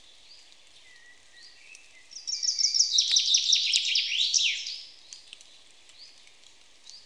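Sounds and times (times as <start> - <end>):
common chaffinch Fringilla coelebs singing: 0.0 - 7.0
background clicks: 1.6 - 1.9, 5.1 - 7.0.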